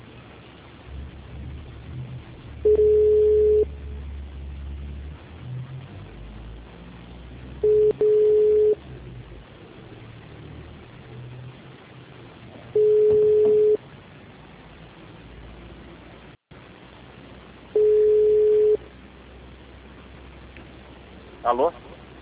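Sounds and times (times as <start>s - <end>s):
faint hiss: 0.0s - 22.1s
telephone line tone beeps after a dropped call: 2.7s - 3.7s, 7.6s - 8.8s, 12.8s - 13.8s, 17.8s - 18.8s
speech: 21.5s - 21.8s.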